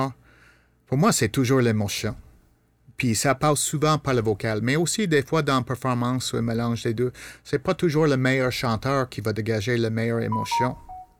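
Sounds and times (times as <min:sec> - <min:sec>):
speech: 0:00.0 - 0:00.2, 0:00.9 - 0:02.3, 0:03.0 - 0:10.9
short thin electronic notification beeps from a mobile phone: 0:10.3 - 0:11.1.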